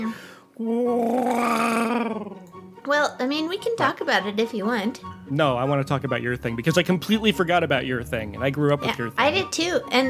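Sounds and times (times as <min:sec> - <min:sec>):
speech: 0:00.0 - 0:10.0
person imitating a World War II Walrus airplane engine: 0:00.7 - 0:02.4.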